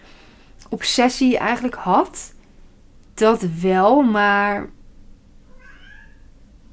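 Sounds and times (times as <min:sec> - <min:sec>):
speech: 0:00.7 - 0:02.4, 0:03.2 - 0:04.8
cat meowing: 0:05.5 - 0:06.3.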